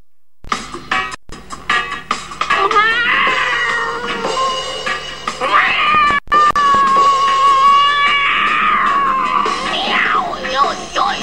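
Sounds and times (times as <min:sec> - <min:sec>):
performer vocally imitating a cat on a hot roof: 0:02.6 - 0:04.8, 0:05.4 - 0:11.2.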